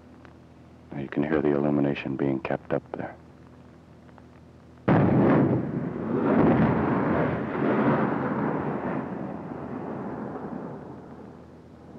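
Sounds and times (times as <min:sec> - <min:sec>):
speech: 0:01.0 - 0:03.2
high-explosive HEAT rounds exploding: 0:04.8 - 0:11.9.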